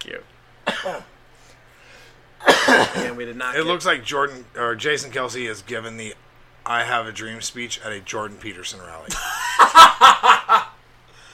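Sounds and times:
speech: 0.2s - 1.2s, 2.7s - 10.2s
harsh raspy coughs: 0.6s - 1.1s, 2.4s - 3.2s
laughter: 9.1s - 10.8s.

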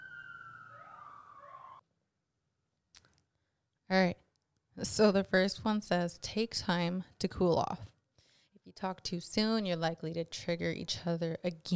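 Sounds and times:
emergency vehicle siren wailing: 0.0s - 1.8s
speech: 3.9s - 4.2s, 4.8s - 7.9s, 8.7s - 11.7s.

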